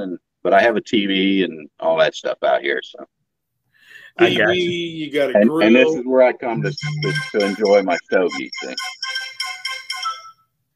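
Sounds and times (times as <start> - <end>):
speech: 0.0 - 3.2, 4.2 - 9.0
phone text message alert chimes: 6.6 - 10.4.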